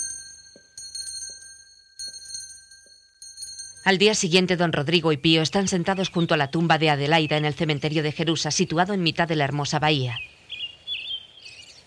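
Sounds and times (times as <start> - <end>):
night watchman's small handbell ringing on his rounds: 0.0 - 4.3
speech: 3.8 - 10.3.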